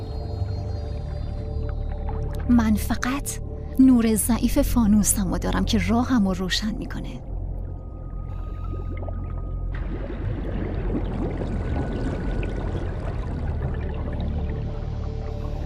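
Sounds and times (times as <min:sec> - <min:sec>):
water sloshing and splashing from someone wading: 0:00.1 - 0:03.7, 0:07.2 - 0:15.6
steady low rumble: 0:02.4 - 0:15.6
speech: 0:02.5 - 0:07.3.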